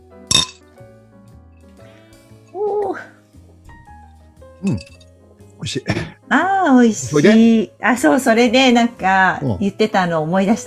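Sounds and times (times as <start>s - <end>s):
single bright glass clink in a toast: 0.3s - 0.6s, 4.6s - 5.1s
speech: 4.6s - 5.0s, 5.6s - 10.6s.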